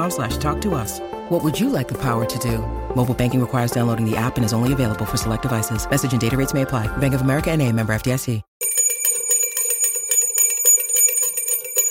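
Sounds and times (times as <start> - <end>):
speech: 0.0 - 8.5
school bell ringing: 8.6 - 11.8.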